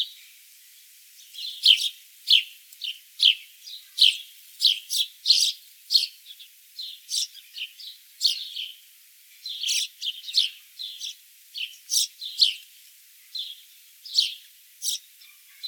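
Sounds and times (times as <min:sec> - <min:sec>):
house sparrow Passer domesticus chirping: 0:01.3 - 0:08.8, 0:09.4 - 0:12.6, 0:13.3 - 0:15.6.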